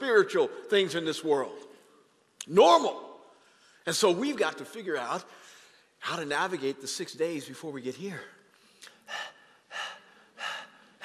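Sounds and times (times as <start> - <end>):
speech: 0.0 - 1.7, 2.4 - 3.1, 3.8 - 5.4, 6.0 - 8.4
exaggerated panting breaths: 8.9 - 11.0.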